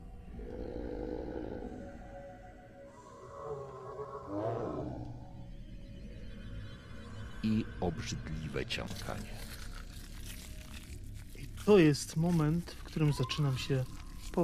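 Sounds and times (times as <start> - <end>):
deep rumbling animal growl: 0.0 - 2.3, 3.0 - 5.4
speech: 7.4 - 9.6, 11.6 - 14.4.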